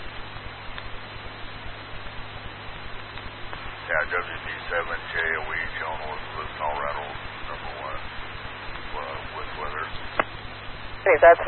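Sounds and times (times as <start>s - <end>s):
faint crackles: 0.0s - 11.4s
low hum: 0.0s - 11.4s
radio static hiss: 0.0s - 11.4s
speech: 4.0s - 8.1s, 11.0s - 11.4s.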